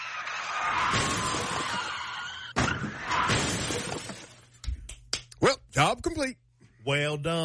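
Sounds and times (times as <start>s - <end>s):
car crash during a police chase: 0.5s - 4.5s
glass shattering: 0.9s - 4.5s
speech: 6.0s - 7.4s.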